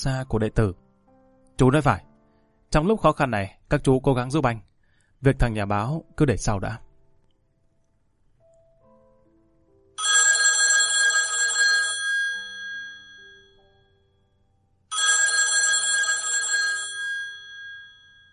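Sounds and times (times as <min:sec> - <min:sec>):
speech: 0:00.0 - 0:00.8, 0:01.6 - 0:02.1, 0:02.7 - 0:06.8
old-style office telephone bell ringing: 0:10.0 - 0:14.3, 0:14.9 - 0:18.3.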